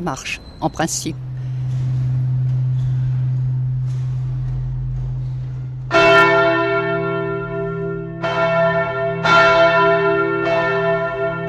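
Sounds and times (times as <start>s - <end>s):
speech: 0.0s - 1.8s
low steady hum: 0.0s - 6.2s
loud church bells ringing: 0.0s - 11.4s.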